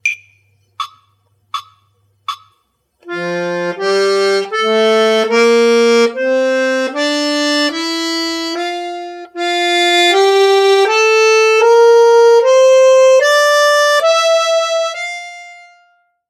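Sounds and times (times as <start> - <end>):
F major scale: 3.0 - 16.2.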